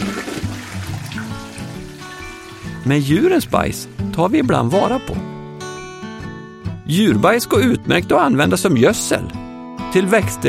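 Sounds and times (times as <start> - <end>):
toilet flushing: 0.0 - 3.1
speech: 2.8 - 5.3, 6.9 - 10.4.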